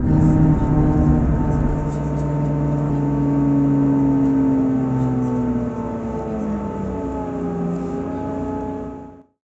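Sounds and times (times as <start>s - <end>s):
Class 158 train engine revving down: 0.0s - 9.2s.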